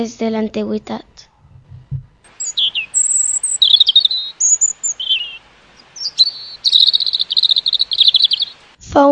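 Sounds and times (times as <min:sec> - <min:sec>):
speech: 0:00.0 - 0:01.2, 0:08.9 - 0:09.1
soft low thump: 0:01.5 - 0:02.2
European robin Erithacus rubecula singing warbling phrases and trills: 0:02.2 - 0:08.8.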